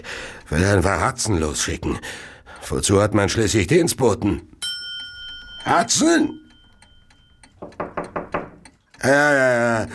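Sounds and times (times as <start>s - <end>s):
speech: 0.0s - 4.6s, 5.6s - 6.4s, 9.0s - 9.9s
knocking at a door: 7.6s - 8.6s.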